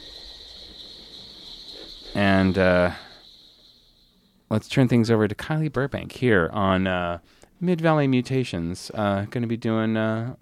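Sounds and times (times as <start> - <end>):
chorus of crickets chirping: 0.0 - 6.7
speech: 2.2 - 3.0, 4.5 - 10.4.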